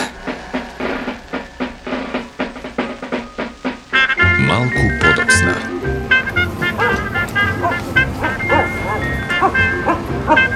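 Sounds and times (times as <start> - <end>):
steady noisy background: 0.0 - 10.5
speech: 4.6 - 6.0
dog barking: 6.6 - 10.5.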